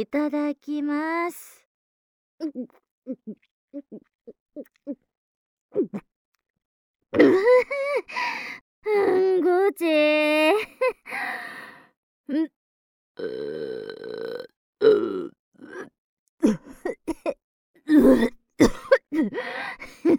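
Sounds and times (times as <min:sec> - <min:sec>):
speech: 0:00.0 - 0:01.6, 0:02.4 - 0:05.1, 0:05.7 - 0:06.1, 0:07.1 - 0:11.7, 0:12.3 - 0:12.6, 0:13.2 - 0:20.1
loud throaty burp after a meal in a cafeteria: 0:13.2 - 0:15.8.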